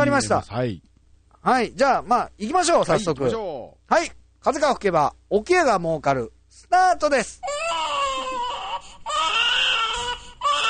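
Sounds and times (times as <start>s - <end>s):
speech: 0.0s - 7.9s
newborn baby crying in wavering wails: 7.4s - 10.6s.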